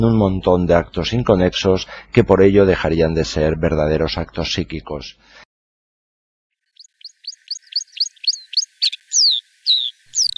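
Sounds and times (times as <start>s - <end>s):
speech: 0.0s - 5.4s
bird trilling in spring birdsong: 6.8s - 10.3s.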